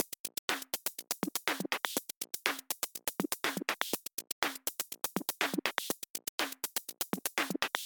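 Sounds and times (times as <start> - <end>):
micro drums percussion: 0.0 - 7.8.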